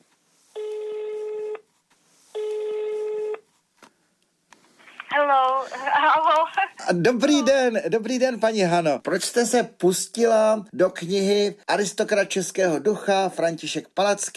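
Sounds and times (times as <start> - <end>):
landline telephone ringback tones: 0.6 - 1.6, 2.4 - 3.4
person answering and speaking on landline telephone: 4.9 - 7.6
speech: 5.6 - 14.3.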